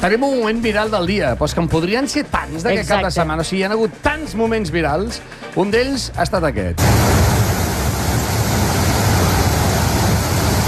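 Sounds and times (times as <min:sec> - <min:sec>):
speech: 0:00.0 - 0:07.3
flash flood torrent rushing down a stream bed in Catalonia during heavy rain: 0:06.8 - 0:10.6.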